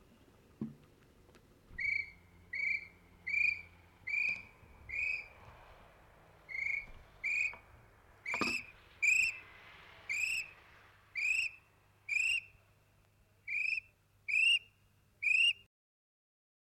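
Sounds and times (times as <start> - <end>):
kiwi calling with shrill whistles: 1.8 - 5.4, 6.5 - 7.6, 8.2 - 9.5, 10.1 - 12.6, 13.5 - 15.7.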